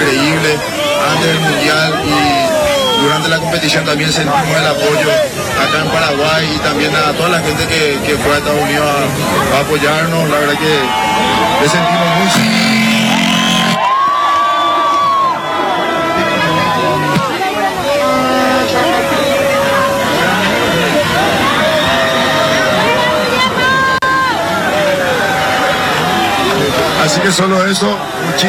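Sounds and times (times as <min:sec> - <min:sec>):
dense roar of crowd voices cheering for the Paraguayan national team in Paraguay: 0:00.0 - 0:28.4
speech: 0:00.6 - 0:02.2, 0:03.1 - 0:12.9, 0:27.1 - 0:28.4
whistles: 0:02.6 - 0:03.4, 0:11.2 - 0:13.9.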